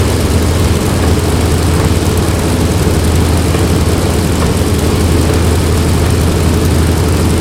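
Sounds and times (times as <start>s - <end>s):
C-46 aircraft engines: 0.0s - 7.3s.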